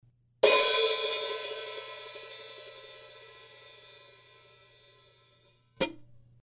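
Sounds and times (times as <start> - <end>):
open hi-hat cymbal hit: 0.4 - 6.0.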